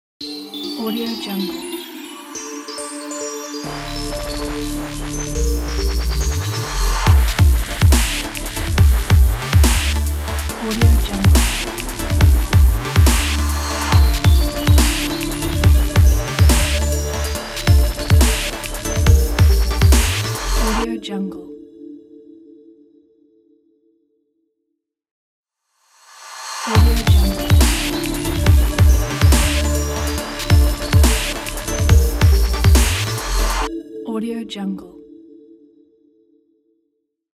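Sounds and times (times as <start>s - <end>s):
aggressive upbeat dubstep logo: 3.7s - 20.8s, 26.7s - 33.7s.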